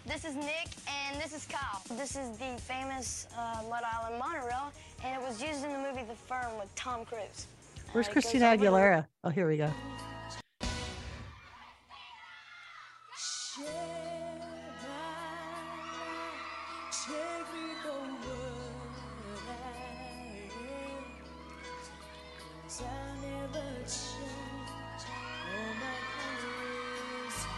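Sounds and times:
speech: 0.2 - 10.1
crowd screaming and whooping: 12.4 - 27.5
live pop music with a pulsing bass line: 13.6 - 27.5.

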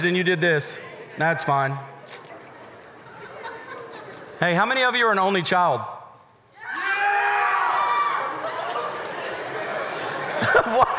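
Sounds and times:
speech: 0.0 - 1.9, 4.4 - 6.0, 10.7 - 10.9
laughter: 2.4 - 4.4, 7.8 - 10.9
people shouting and calling: 6.6 - 10.8
large crowd booing: 6.6 - 10.9.

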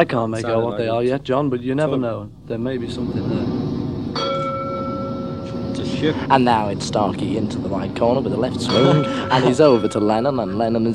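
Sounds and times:
speech: 0.0 - 3.6, 5.8 - 10.9
bell ringing: 4.2 - 6.0, 8.6 - 10.9.

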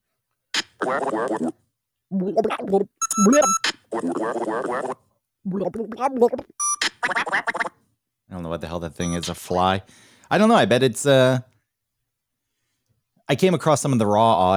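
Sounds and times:
video game evil fox character garbled gibberish voice: 0.6 - 7.7, 9.0 - 9.3
speech: 0.9 - 7.7, 8.3 - 11.5, 13.3 - 14.5
brief electronic beeps: 3.0 - 3.7, 6.6 - 6.9, 9.0 - 9.3.

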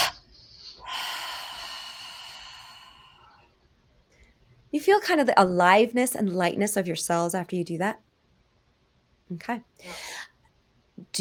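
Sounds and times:
breathy hissing exhale during a relaxation exercise: 0.0 - 3.4
speech: 4.7 - 8.0, 9.3 - 10.1.

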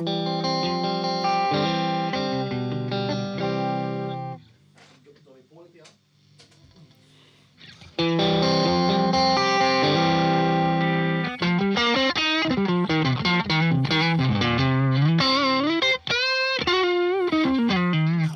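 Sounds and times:
fuzzy overdriven electric guitar through an overdrive pedal: 0.0 - 4.5, 7.6 - 18.3.

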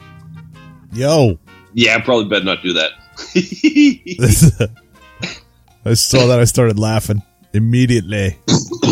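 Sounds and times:
speech: 0.9 - 8.8
laughter: 3.2 - 4.8
rough harsh coughing fit with hacking coughs and strained vocal sounds: 5.2 - 5.5, 8.5 - 8.8.

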